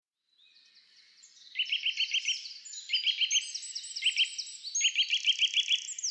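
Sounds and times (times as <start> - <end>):
high-pitched bird chorus: 0.4 - 6.0.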